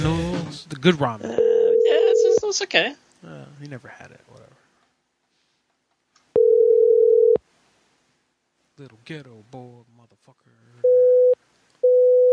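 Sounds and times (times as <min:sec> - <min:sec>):
speech: 0:00.6 - 0:01.4, 0:02.5 - 0:04.5, 0:08.8 - 0:10.4
telephone call tone from an unanswered phone call: 0:01.3 - 0:02.4, 0:06.4 - 0:07.4, 0:10.8 - 0:12.3.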